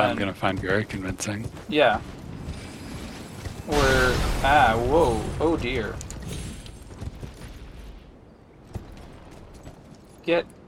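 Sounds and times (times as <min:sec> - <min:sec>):
speech: 0:00.0 - 0:02.2, 0:03.7 - 0:06.4, 0:10.3 - 0:10.6
horse hooves clip-clopping: 0:00.0 - 0:03.7, 0:05.8 - 0:10.6.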